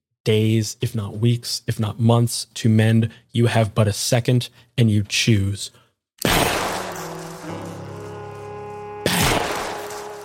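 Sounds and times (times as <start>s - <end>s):
speech: 0.2s - 5.8s
gunshots from a gun fired point-blank: 6.2s - 7.4s, 9.1s - 10.0s
sustained tone: 6.6s - 10.2s.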